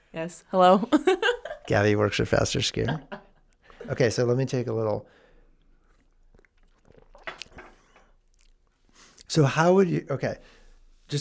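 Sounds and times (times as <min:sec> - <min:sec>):
speech: 0:00.2 - 0:03.2, 0:03.9 - 0:05.2, 0:09.3 - 0:11.1
soft lip and swallowing sounds: 0:05.5 - 0:09.3
person sipping tea: 0:05.8 - 0:09.3.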